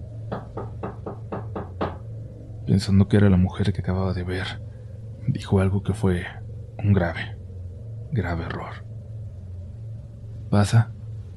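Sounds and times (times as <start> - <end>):
low steady hum: 0.0 - 11.3
firm knocks on a door: 0.3 - 2.0
speech: 2.7 - 4.7, 5.3 - 7.4, 8.1 - 8.9, 10.5 - 10.9.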